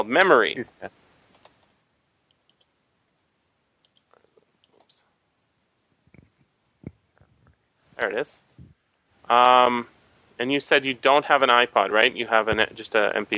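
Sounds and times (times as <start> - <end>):
speech: 0.0 - 1.0, 8.0 - 8.5, 9.3 - 13.3
faint typing on a computer keyboard: 2.3 - 2.7.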